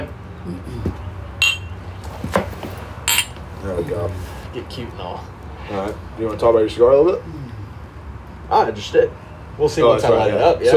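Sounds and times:
speech: 0.4 - 1.0, 3.7 - 7.5, 8.5 - 10.7
glasses of barrel proof rye clinking in a toast: 1.4 - 1.8, 3.1 - 3.4.

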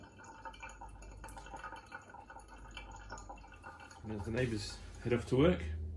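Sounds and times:
water drips and splashes: 0.0 - 4.6
water trickling through coffee grounds in a pour-over funnel into an insulated jug: 0.0 - 5.4
speech: 4.0 - 5.8.

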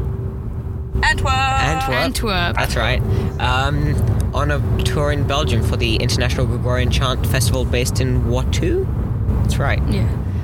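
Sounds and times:
road noise inside a moving car: 0.0 - 10.4
speech: 1.0 - 10.3.

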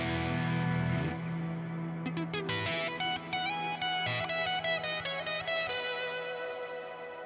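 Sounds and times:
electric guitar through an effects processor with echo and octave-up pitch shifter: 0.0 - 7.2.

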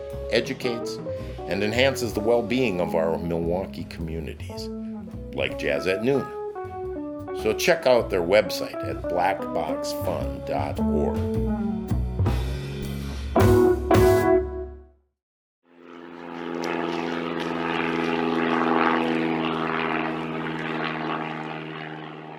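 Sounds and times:
propeller airplane droning overhead: 0.0 - 10.4, 15.7 - 22.3
music: 0.0 - 15.0
speech: 0.1 - 6.4, 7.4 - 11.7.

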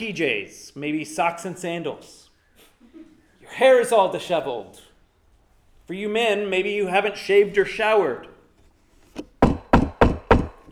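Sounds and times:
speech: 0.0 - 2.2, 2.9 - 4.9, 5.9 - 8.3
knocking on a door: 9.4 - 10.6.

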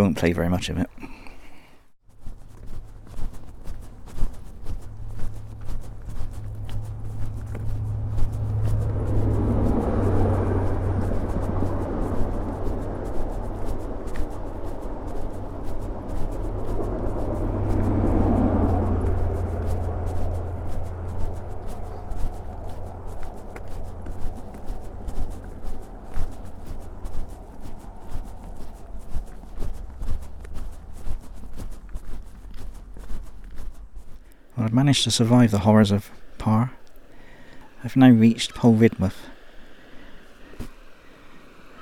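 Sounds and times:
speech: 0.0 - 1.2, 35.0 - 36.7, 37.8 - 39.3
hum: 0.0 - 41.8
low rumble of traffic in a town street in Par: 0.0 - 41.8
vehicles passing in a town street: 0.0 - 41.8.

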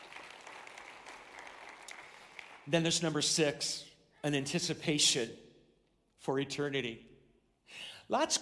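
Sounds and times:
crowd applauding in a large room: 0.0 - 2.9
speech: 2.6 - 5.4, 6.2 - 7.1, 7.7 - 8.4.

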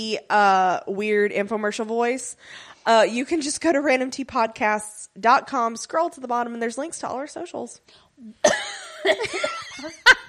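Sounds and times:
speech: 0.0 - 10.2
woman coughing: 8.3 - 10.0.

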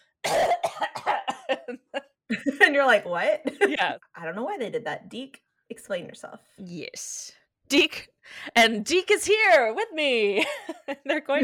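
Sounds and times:
harsh rasping fit of coughing: 0.2 - 2.6
speech: 1.7 - 11.4.

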